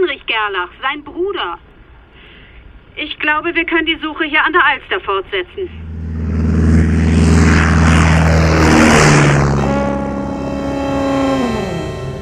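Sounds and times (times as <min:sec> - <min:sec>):
speech: 0:00.0 - 0:01.7, 0:03.0 - 0:05.8
propeller airplane taking off from a bumpy airstrip at Grytviken: 0:05.6 - 0:12.1.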